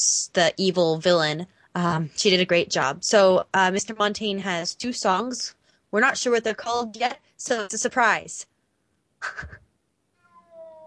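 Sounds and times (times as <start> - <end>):
speech: 0.0 - 8.5, 9.2 - 9.6
house cat meowing softly: 10.2 - 10.8.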